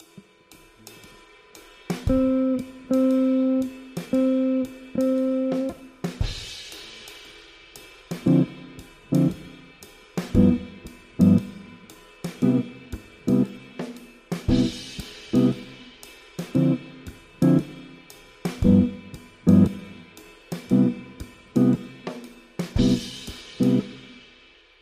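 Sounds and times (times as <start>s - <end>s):
jazz music: 2.1s - 6.0s, 8.2s - 9.6s, 10.3s - 11.7s, 14.5s - 15.7s, 16.5s - 17.9s, 18.6s - 22.0s, 22.7s - 24.0s.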